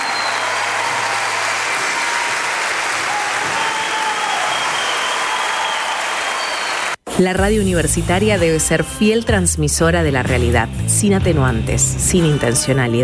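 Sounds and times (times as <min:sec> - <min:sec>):
loud sustained audience applause: 0:00.0 - 0:07.0
speech: 0:07.2 - 0:13.0.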